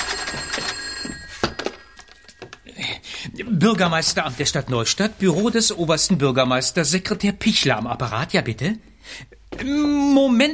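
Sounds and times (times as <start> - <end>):
telephone bell ringing: 0.0 - 3.1
speech: 3.4 - 10.5.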